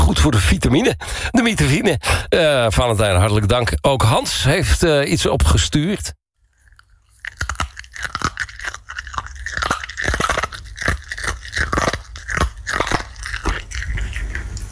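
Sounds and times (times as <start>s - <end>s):
speech: 0.1s - 6.2s
dog crunching and chewing a crunchy treat: 6.4s - 14.6s.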